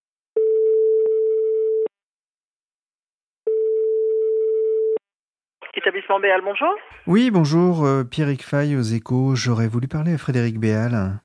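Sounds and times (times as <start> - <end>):
telephone ringback tone of an outgoing call: 0.4 - 1.9, 3.5 - 5.0
speech: 5.8 - 11.2.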